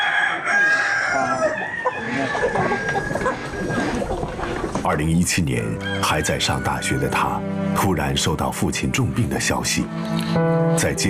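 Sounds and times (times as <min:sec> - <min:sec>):
rooster crowing: 0:00.0 - 0:04.0, 0:05.8 - 0:07.2
flock of chickens clucking and squawking: 0:00.0 - 0:04.9
speech: 0:04.9 - 0:11.0.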